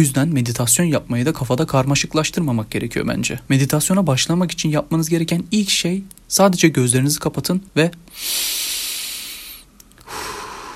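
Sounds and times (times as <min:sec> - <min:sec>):
speech: 0:00.0 - 0:08.8
long deep breath drawn in: 0:08.1 - 0:10.7
soft low exhale: 0:08.1 - 0:10.7.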